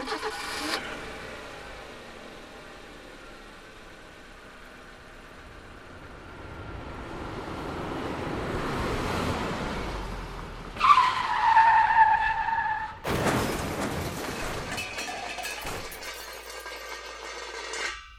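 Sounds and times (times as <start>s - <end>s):
tires shrieking in a long skid: 8.4s - 15.8s
loud crunching car crash impact: 12.9s - 18.1s
debris rattling: 13.0s - 18.1s.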